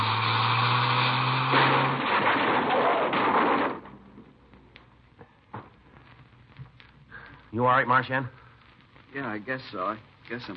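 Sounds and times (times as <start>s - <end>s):
car crash collision: 0.0s - 4.4s
debris clunking and rattling: 1.5s - 4.4s
speech: 7.6s - 8.4s, 9.2s - 10.5s.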